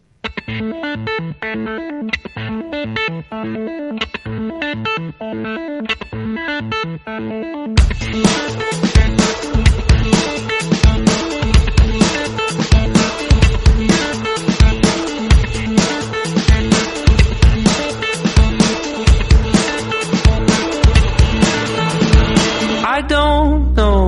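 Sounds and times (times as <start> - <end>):
thinner, softer guitar intro of a rock song: 0.2 - 23.9
speech: 0.6 - 9.7
steady, punchy rock drums: 7.8 - 22.9.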